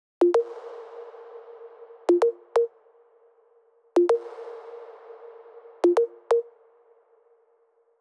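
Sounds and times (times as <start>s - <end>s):
128 BPM tech house sequence: 2.1s - 2.7s, 4.0s - 4.2s, 5.8s - 6.5s.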